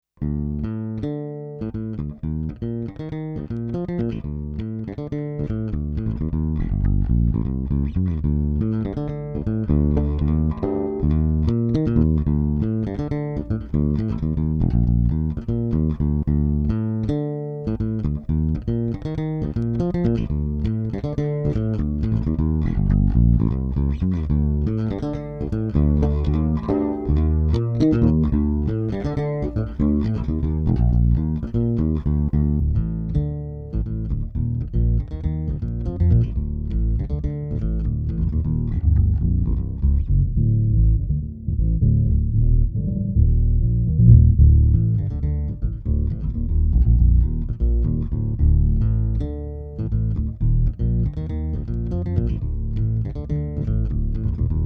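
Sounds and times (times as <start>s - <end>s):
BH-550 passive J bass played with fingers: 0.1s - 54.6s.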